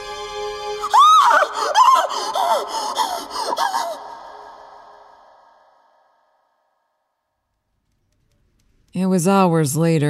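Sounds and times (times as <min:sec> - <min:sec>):
woman screaming with shrill wavering wails: 0:00.8 - 0:05.7
speech: 0:09.0 - 0:10.0.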